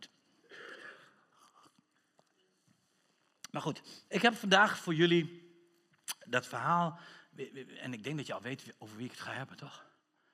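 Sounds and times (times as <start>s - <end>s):
person taking a quiet sip of water: 0.4s - 3.5s
speech: 3.6s - 5.4s, 6.3s - 9.9s
faint wet mouth clicks: 5.9s - 6.3s.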